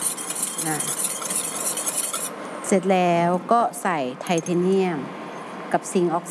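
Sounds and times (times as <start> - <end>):
utensil stirring an oil mixture in a container to dissolve ingredients: 0.0 - 3.2
speech: 0.6 - 1.1, 2.7 - 6.2.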